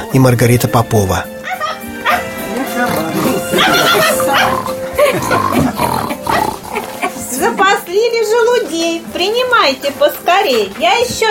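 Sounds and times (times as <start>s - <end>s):
speech: 0.0s - 1.8s, 7.5s - 11.3s
laughter: 1.6s - 7.9s
busy steady noise: 1.8s - 11.3s
human voice mimicking a pig's oinking: 2.8s - 7.0s.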